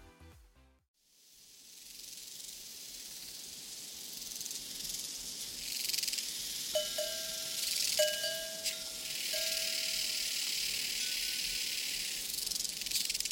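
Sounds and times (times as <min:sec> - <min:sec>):
dense chorus of prairie crickets: 0:01.8 - 0:13.3
hollow metallic cowbell clanks: 0:06.8 - 0:11.7.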